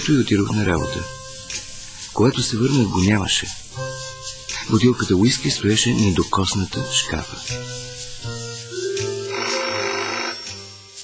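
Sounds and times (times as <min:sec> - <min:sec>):
speech: 0:00.0 - 0:01.2, 0:02.2 - 0:03.9, 0:04.7 - 0:07.9
old-style telephone bell ringing: 0:09.2 - 0:10.7.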